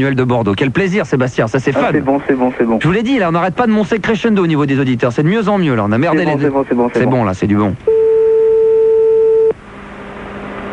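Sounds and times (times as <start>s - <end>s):
speech: 0.0s - 8.0s
faint low hum: 0.0s - 10.7s
telephone ringback tone on a call to a listener: 7.9s - 9.6s.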